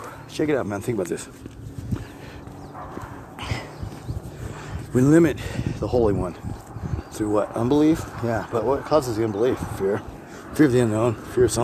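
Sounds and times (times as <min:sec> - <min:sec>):
steady outdoor noise: 0:00.0 - 0:11.6
speech: 0:00.4 - 0:01.6, 0:05.0 - 0:06.5, 0:07.2 - 0:11.6
dog giving low barks: 0:02.7 - 0:03.7.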